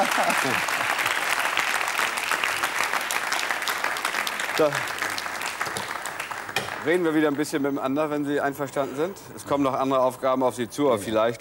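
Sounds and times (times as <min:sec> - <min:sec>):
studio audience applause: 0:00.0 - 0:07.3
speech: 0:00.1 - 0:01.0, 0:04.6 - 0:05.0, 0:06.8 - 0:11.3.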